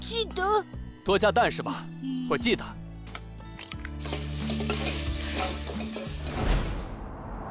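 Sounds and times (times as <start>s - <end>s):
speech: 0.3s - 2.8s
wok clanking while stir-frying egg fried rice: 4.0s - 6.4s
egg fried rice sizzling and scraping in a hot wok: 4.0s - 6.8s.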